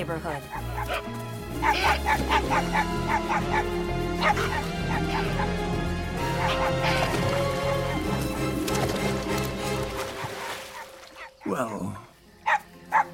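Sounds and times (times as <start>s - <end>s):
speech: 0.0s - 7.8s, 11.4s - 12.6s
steady low musical backdrop: 0.0s - 13.1s
small shaggy dog yapping while chasing capybaras through a suburban neighborhood: 0.8s - 5.5s.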